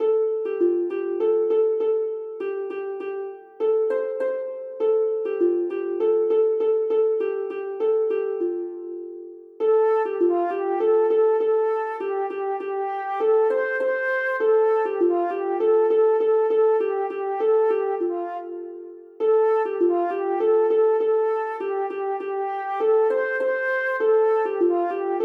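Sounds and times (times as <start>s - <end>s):
harp: 0.0s - 25.2s
flute: 9.6s - 25.2s.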